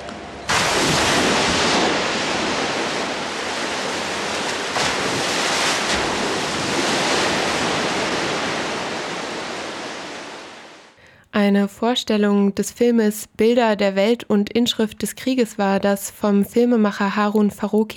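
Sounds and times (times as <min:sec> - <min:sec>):
artificial sea waves from a wave machine: 0:00.0 - 0:11.0
speech: 0:11.4 - 0:17.9.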